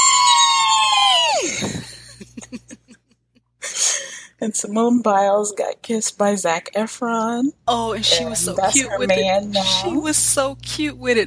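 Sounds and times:
loud high-pitched celebratory scream: 0:00.0 - 0:01.7
laughter: 0:01.3 - 0:04.2
speech: 0:04.4 - 0:11.2.

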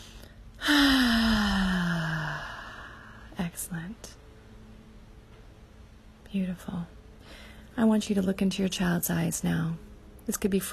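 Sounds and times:
deep breath let out as one long audible sigh: 0:00.2 - 0:03.4
speech: 0:03.4 - 0:04.2, 0:06.3 - 0:10.7.

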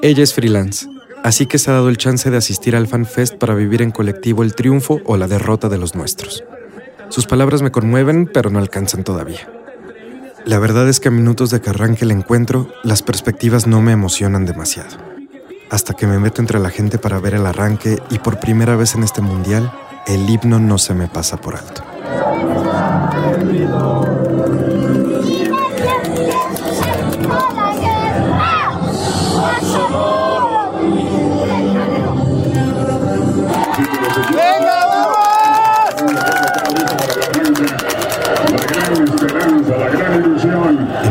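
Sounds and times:
speech: 0:00.0 - 0:09.6, 0:10.4 - 0:24.0
football fans chanting: 0:14.9 - 0:41.0
football fans clapping: 0:21.7 - 0:28.4, 0:33.4 - 0:41.0.

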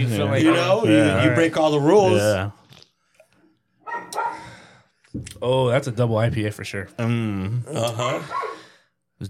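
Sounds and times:
speech: 0:00.0 - 0:02.6, 0:05.2 - 0:08.6
dog barking harshly: 0:03.8 - 0:04.5, 0:08.2 - 0:08.7.

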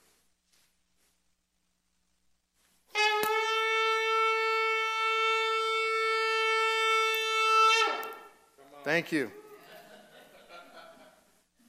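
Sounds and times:
trumpet blown as a call to attention: 0:02.9 - 0:08.5
speech: 0:09.0 - 0:09.4
laughter: 0:09.4 - 0:11.4.

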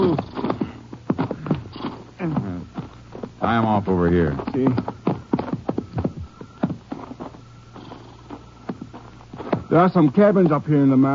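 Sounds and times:
horses snorting whinnies: 0:00.0 - 0:02.7
horses shuffling and clopping: 0:00.0 - 0:11.1
speech: 0:03.5 - 0:05.0, 0:09.7 - 0:11.1.

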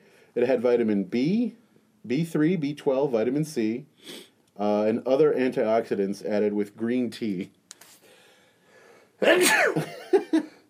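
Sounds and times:
speech: 0:00.4 - 0:07.6, 0:09.2 - 0:10.6
loud sneeze: 0:09.2 - 0:09.9.

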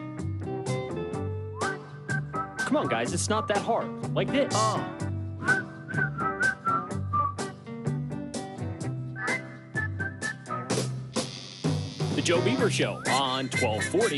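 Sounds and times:
steady rhythmic accompaniment: 0:00.2 - 0:14.1
person whistling a bright bouncy tune: 0:01.6 - 0:02.9, 0:05.4 - 0:07.6, 0:09.2 - 0:10.9, 0:12.8 - 0:14.0
speech: 0:02.7 - 0:05.1, 0:12.3 - 0:14.1.

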